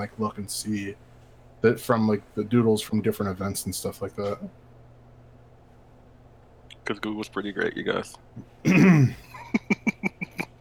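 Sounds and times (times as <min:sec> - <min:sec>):
speech: 0:00.0 - 0:04.6, 0:06.9 - 0:09.2
person clearing their throat: 0:08.6 - 0:09.5.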